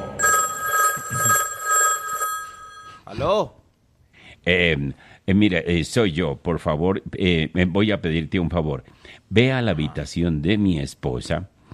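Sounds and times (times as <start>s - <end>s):
telephone bell ringing at night inside a house in North Yorkshire England: 0.0s - 3.0s
speech: 3.2s - 3.6s, 4.4s - 11.7s.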